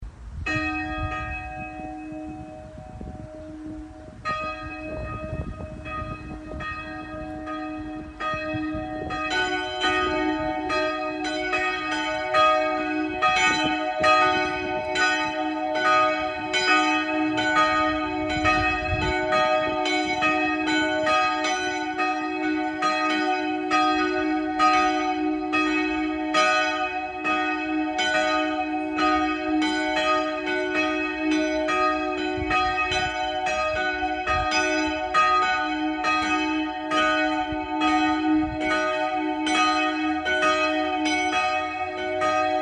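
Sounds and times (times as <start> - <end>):
multi-voice bell peal on D sharp and F sharp: 0.4 - 42.6.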